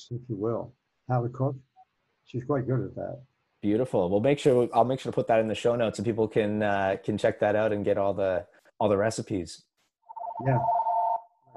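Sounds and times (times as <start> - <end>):
speech: 0.0 - 1.7, 2.3 - 9.7, 10.4 - 10.8
telephone ringing with one steady electronic tone: 10.1 - 11.5.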